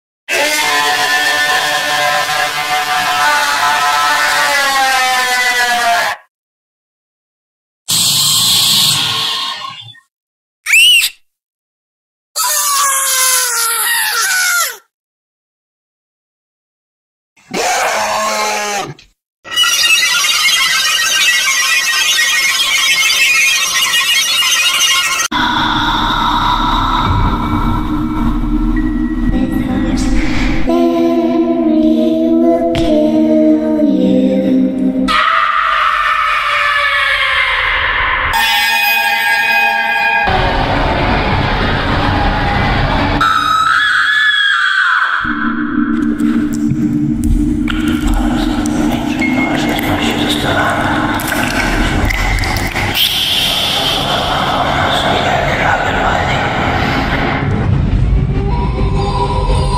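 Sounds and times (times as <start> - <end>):
Halloween horror sound effects: 0.3 - 6.2, 17.5 - 59.7
Halloween scream: 0.3 - 6.3, 7.9 - 10.0, 10.7 - 11.1, 12.4 - 14.9, 17.4 - 30.7, 35.1 - 46.5, 49.9 - 57.7.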